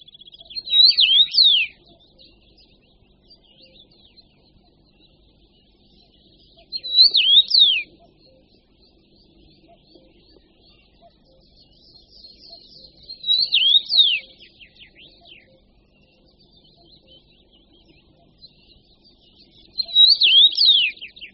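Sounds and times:
common rosefinch singing: 0.4s - 1.8s, 6.6s - 7.9s, 12.5s - 15.6s, 19.7s - 21.3s.

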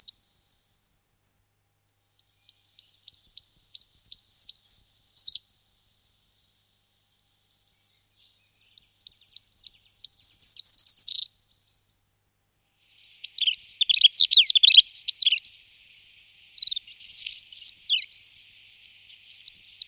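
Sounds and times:
Goldcrest song with very high thin phrase: 0.0s - 1.0s, 1.9s - 19.8s.

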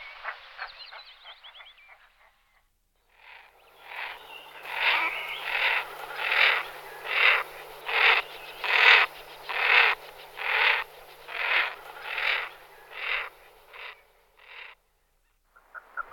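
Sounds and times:
common merganser Mergus merganser calling: 3.7s - 14.0s.

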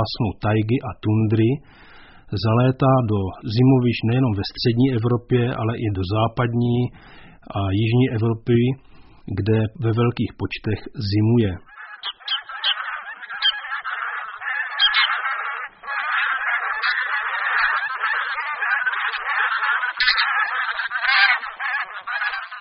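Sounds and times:
speech: 0.0s - 11.7s
flock of bean geese Anser fabalis honking: 11.6s - 22.5s.

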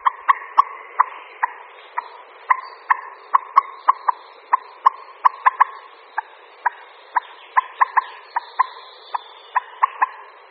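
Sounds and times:
common moorhen calling with short sharp clucking notes: 0.0s - 10.4s.

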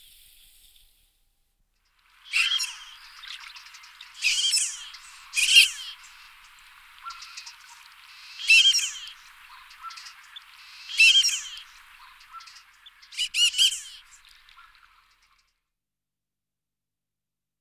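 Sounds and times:
marbled duck Anas angustirostris calling: 2.3s - 15.0s.

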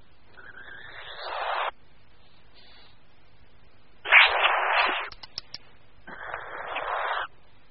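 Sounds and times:
European nightjar chicks hissing on the nest: 0.3s - 1.8s, 2.5s - 3.0s, 4.0s - 7.4s
sharp clicks: 5.0s - 5.7s.

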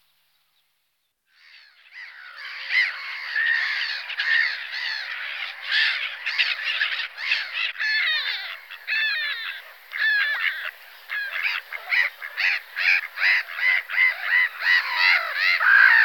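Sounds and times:
Black-headed gulls crying, Chroicocephalus ridibundus: 2.1s - 16.0s.

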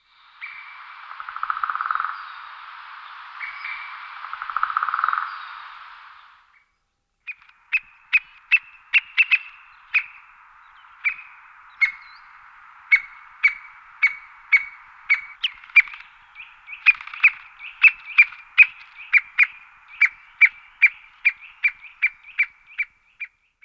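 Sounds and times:
white-backed woodpecker Dendrocopos leucotos: 0.4s - 2.3s, 3.4s - 5.6s, 7.3s - 23.6s.

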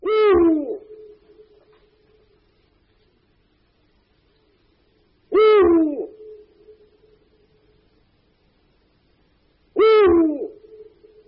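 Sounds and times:
Eurasian eagle-owl hooting: 0.0s - 1.8s, 5.3s - 7.2s, 9.7s - 11.2s.

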